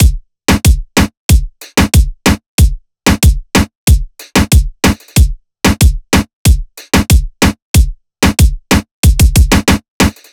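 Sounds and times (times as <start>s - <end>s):
hip hop drum loop: 0.0s - 10.3s.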